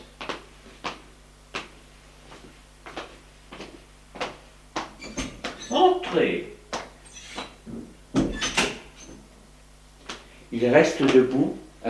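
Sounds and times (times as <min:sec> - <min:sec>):
low steady hum: 0:00.0 - 0:11.8
speech: 0:05.7 - 0:06.5, 0:10.6 - 0:11.8
door being shut at a doctor's office: 0:07.7 - 0:08.8.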